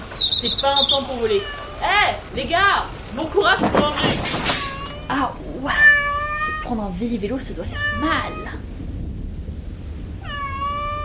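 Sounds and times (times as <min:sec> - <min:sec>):
low rumble: 0:00.0 - 0:11.0
speech: 0:00.4 - 0:06.0, 0:06.7 - 0:08.7
cat meowing: 0:01.2 - 0:01.9, 0:04.6 - 0:06.7, 0:07.7 - 0:08.6, 0:10.2 - 0:11.0.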